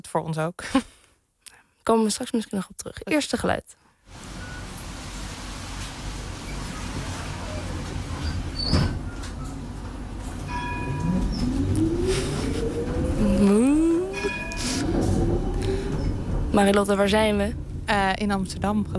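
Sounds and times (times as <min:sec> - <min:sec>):
speech: 0:00.0 - 0:01.0, 0:01.8 - 0:04.3, 0:08.7 - 0:08.9, 0:16.6 - 0:18.9
tram riding with a low rolling rumble in Amsterdam: 0:04.2 - 0:18.9
tram bell high dings: 0:10.2 - 0:16.8
tram wheels squealing metallically on the track: 0:10.3 - 0:16.4.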